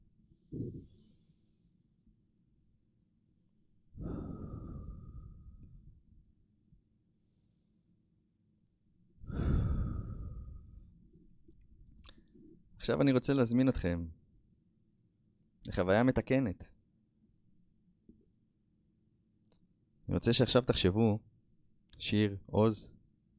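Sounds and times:
deep breath in and out: 3.9 - 6.3, 9.2 - 11.2
speech: 12.8 - 14.2, 15.6 - 16.7, 20.1 - 21.3, 22.0 - 23.0.

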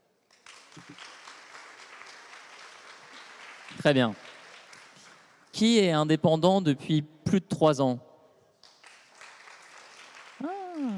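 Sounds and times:
conference audience in a hall clapping: 0.2 - 6.0, 8.6 - 10.9
speech: 0.8 - 1.2, 3.7 - 4.3, 5.6 - 8.1.

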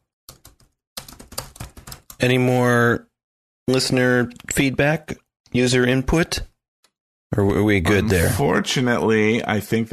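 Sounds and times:
keyboard typing: 0.3 - 2.2
speech: 2.2 - 3.1, 3.7 - 6.5, 7.3 - 9.9.

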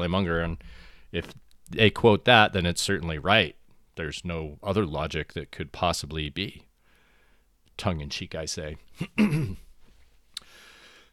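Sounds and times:
speech: 0.0 - 6.7, 7.8 - 9.6
person clearing throat: 9.0 - 9.7.

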